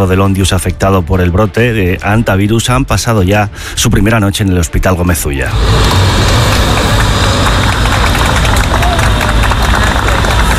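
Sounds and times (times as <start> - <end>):
speech: 0.0 - 6.4
engines of arriving vehicles rumbling: 5.4 - 10.5
neighbours clapping outdoors: 5.6 - 10.5.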